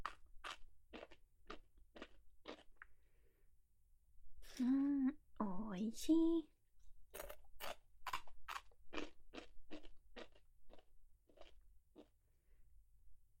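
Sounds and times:
rice crackers being bitten and chewed: 0:00.0 - 0:02.9, 0:07.1 - 0:12.2
speech: 0:05.8 - 0:06.5.

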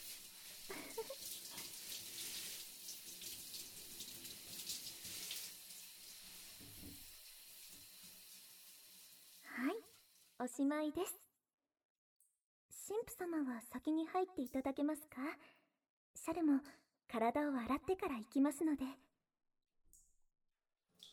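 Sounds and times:
shower water spraying on a body during rinsing: 0:00.0 - 0:10.4
speech: 0:10.4 - 0:11.2, 0:12.9 - 0:15.6, 0:16.2 - 0:19.0.

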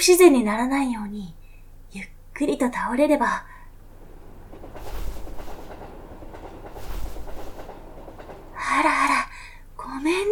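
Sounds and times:
speech: 0:00.0 - 0:03.5, 0:08.7 - 0:09.2, 0:10.0 - 0:10.2
crowded train rumbling and rattling along the tracks: 0:03.7 - 0:10.2
train wheels clattering over rail joints: 0:03.8 - 0:09.4.

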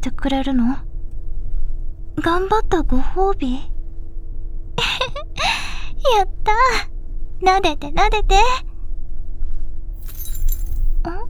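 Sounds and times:
speech: 0:00.0 - 0:00.9, 0:02.2 - 0:03.7, 0:06.0 - 0:08.7
small jewellery accessory dropping with metallic clinks: 0:10.0 - 0:11.0.

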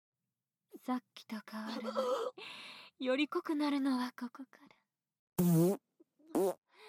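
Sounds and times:
speech: 0:00.8 - 0:04.8
loud farts: 0:05.4 - 0:06.6.

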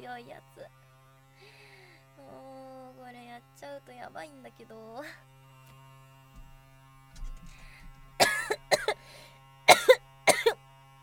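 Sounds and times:
steady low electrical hum: 0:00.0 - 0:11.0
speech: 0:00.1 - 0:00.8, 0:01.4 - 0:05.4
person coughing in harsh bursts: 0:08.2 - 0:09.0, 0:09.7 - 0:10.6.

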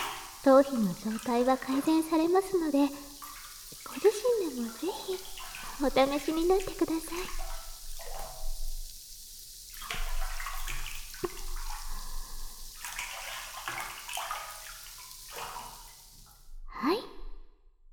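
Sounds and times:
running water rinsing shampoo foam off a person's hair: 0:00.0 - 0:16.5
speech: 0:00.4 - 0:03.1, 0:03.9 - 0:07.4.

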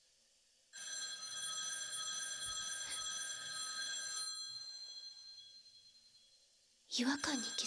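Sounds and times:
old black rotary telephone bell ringing: 0:00.8 - 0:06.3
speech: 0:06.9 - 0:07.6.

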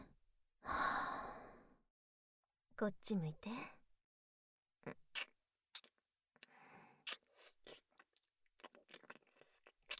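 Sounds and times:
human breathing in and out during a guided breathing exercise: 0:00.6 - 0:01.8
speech: 0:02.8 - 0:03.8.

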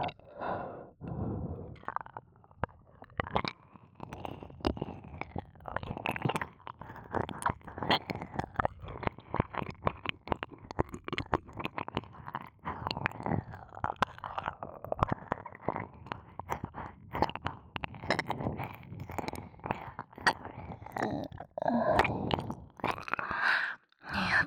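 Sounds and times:
breathy sighs: 0:00.3 - 0:01.8, 0:23.2 - 0:24.4
wet mouth smacks, clicks and chewing noises imitating eating an ear: 0:03.1 - 0:24.4.

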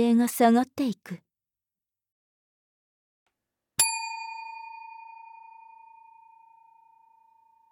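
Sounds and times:
speech: 0:00.0 - 0:01.2
bell ringing: 0:03.8 - 0:07.7.

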